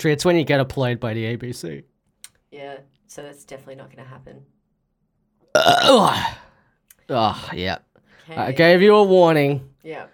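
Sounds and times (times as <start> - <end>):
speech: 0.0 - 1.9, 2.5 - 4.6, 5.5 - 6.5, 7.1 - 10.1
person burping into the microphone: 5.5 - 7.5.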